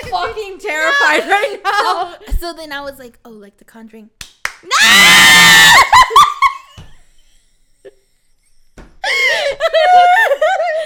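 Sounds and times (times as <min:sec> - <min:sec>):
laughter: 0:00.0 - 0:02.3, 0:05.6 - 0:06.9, 0:09.1 - 0:10.8
speech: 0:00.1 - 0:06.4
people screaming in fright: 0:04.7 - 0:06.2.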